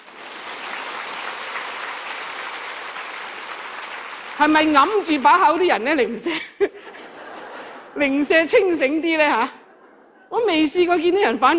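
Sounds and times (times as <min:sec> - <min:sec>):
audience applause from a crowd: 0:00.0 - 0:05.9
speech: 0:04.4 - 0:06.9, 0:08.0 - 0:09.6, 0:10.3 - 0:11.5
laughter: 0:06.2 - 0:08.2.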